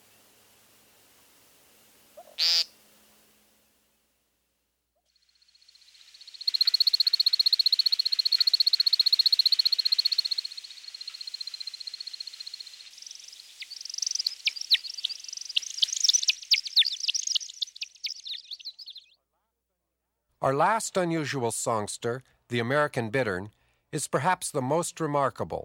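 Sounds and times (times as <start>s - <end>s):
male American woodcock peent call: 2.1s - 2.8s, 5.6s - 19.2s
American woodcock wing feathers twittering trill in spiraling flight display: 5.6s - 19.1s
speech: 20.4s - 25.6s.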